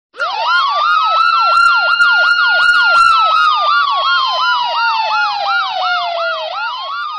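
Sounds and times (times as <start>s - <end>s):
ambulance siren: 0.1s - 7.1s.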